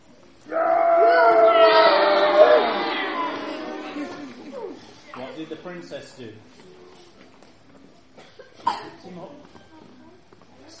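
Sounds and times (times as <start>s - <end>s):
small group of voices cheering: 0.5s - 4.9s
speech: 5.7s - 6.7s.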